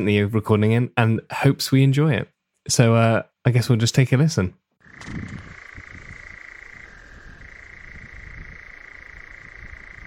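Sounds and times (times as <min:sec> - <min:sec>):
speech: 0:00.0 - 0:05.5
European nightjar churring in Northumberland: 0:04.8 - 0:10.0.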